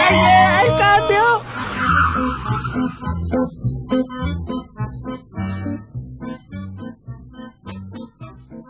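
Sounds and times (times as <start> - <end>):
car brakes squealing: 0.0 - 6.6
car engine driving through traffic: 0.0 - 8.5.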